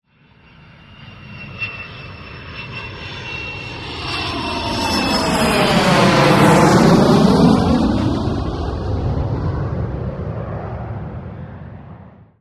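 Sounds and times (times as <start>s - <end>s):
Nimrod aircraft: 0.0s - 12.3s.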